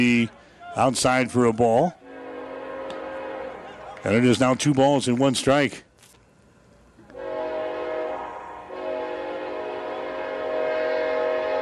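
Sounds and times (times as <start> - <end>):
speech: 0.0 - 2.0, 4.0 - 5.9
train horn blaring: 2.0 - 4.0, 7.1 - 11.6.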